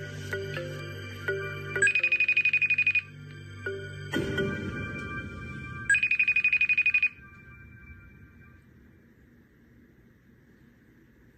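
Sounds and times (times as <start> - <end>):
electronic ringback tone of an outgoing phone call: 0.3 - 4.0, 5.9 - 8.7
beep: 1.8 - 3.1, 5.9 - 8.6.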